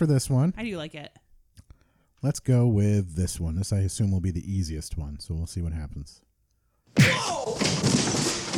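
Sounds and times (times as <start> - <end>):
speech: 0.0 - 1.2, 2.2 - 6.3
punch to the face: 7.0 - 8.4.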